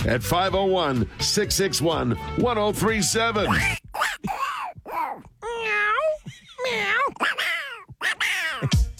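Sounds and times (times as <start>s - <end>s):
speech: 0.0s - 4.4s
man imitating cat meows: 3.4s - 8.8s.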